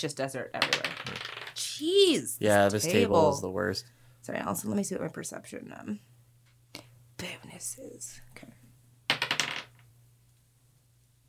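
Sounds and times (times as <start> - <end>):
speech: 0.0 - 6.1, 7.2 - 8.6
dice clattering onto a hard tabletop: 0.6 - 1.6, 9.1 - 9.9.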